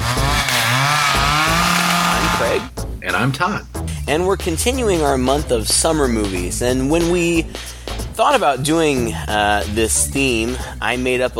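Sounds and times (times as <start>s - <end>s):
chainsaw engine revving: 0.0s - 2.7s
speech: 2.5s - 11.3s.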